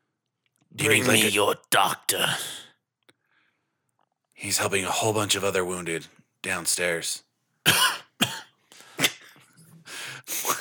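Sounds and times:
speech: 0.8 - 2.6, 4.4 - 7.9
sharp raspy coughs: 7.7 - 9.7.

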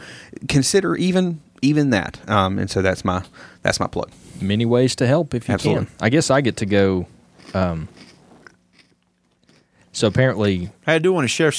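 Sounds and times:
speech: 0.4 - 8.1, 10.0 - 11.5
crunchy food being chewed: 7.4 - 10.3.

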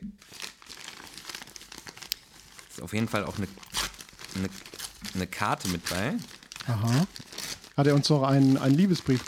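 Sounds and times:
paper crinkling as a package is unwrapped: 0.2 - 9.2
speech: 2.8 - 3.7, 4.4 - 9.2.

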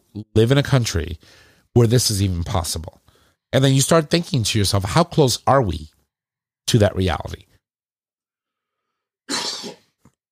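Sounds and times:
speech: 0.2 - 6.0, 6.7 - 7.5
harsh forceful cough: 9.3 - 10.0.

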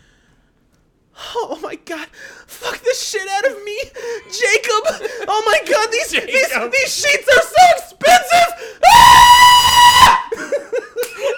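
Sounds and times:
speech: 1.4 - 7.9
man screaming loudly: 2.7 - 10.3
short breathy bursts of stifled laughter: 10.3 - 11.3.

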